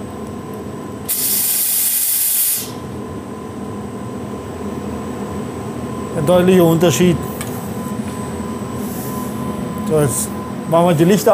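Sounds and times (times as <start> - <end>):
low mechanical hum with a faint tonal whine: 0.0 - 11.3
steam hissing out of a machine: 1.1 - 2.8
speech: 6.2 - 7.3, 9.9 - 11.3.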